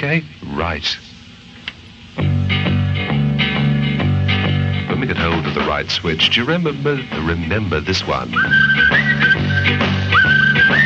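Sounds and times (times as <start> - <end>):
speech: 0.0 - 1.1, 5.1 - 8.7
lively band backing with steady beats: 1.7 - 10.8
bright whistled melody with quick upward slides: 8.3 - 10.8.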